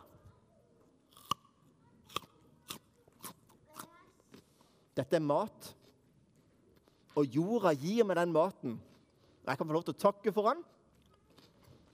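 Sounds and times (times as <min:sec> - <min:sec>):
biting into a raw carrot: 0:01.1 - 0:03.9
softer crunching chews of raw carrot: 0:01.1 - 0:04.7
speech: 0:05.0 - 0:05.8, 0:07.2 - 0:08.9, 0:09.5 - 0:10.7.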